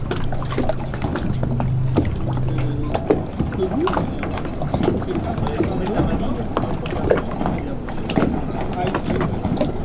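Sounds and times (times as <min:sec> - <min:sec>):
low steady hum: 0:00.0 - 0:05.5
water lapping with small ripples and gentle splashes: 0:00.0 - 0:09.8.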